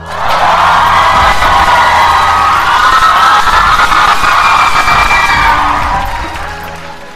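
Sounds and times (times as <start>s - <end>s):
audience cheering: 0.0s - 7.1s.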